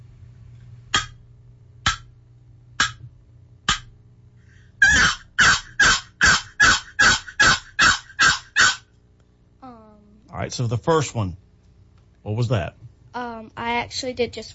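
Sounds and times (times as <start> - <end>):
box turkey call imitating a hen's plain yelp: 4.8 - 8.9
speech: 10.4 - 11.4, 12.2 - 14.5.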